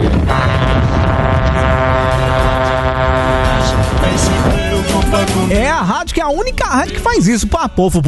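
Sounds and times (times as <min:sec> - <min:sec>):
rumbling noisy background: 0:00.0 - 0:07.3
horns honking: 0:00.2 - 0:05.6
speech: 0:06.2 - 0:08.0.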